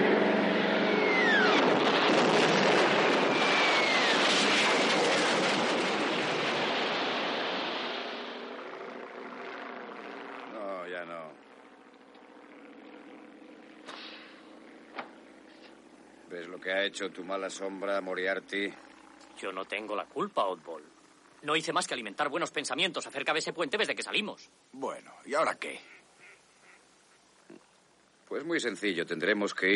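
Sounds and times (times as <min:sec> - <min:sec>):
heavy rumbling blasts of bombs hitting a bridge: 0:00.0 - 0:10.2
two warplanes roaring overhead with whining tones: 0:00.0 - 0:24.2
speech: 0:16.6 - 0:26.0, 0:28.3 - 0:29.7.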